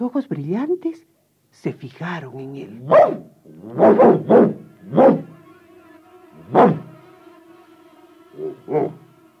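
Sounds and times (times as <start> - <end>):
speech: 0.1 - 5.2, 6.5 - 6.8, 8.7 - 9.0
dog barking: 2.8 - 5.4, 6.5 - 7.0, 8.4 - 9.1.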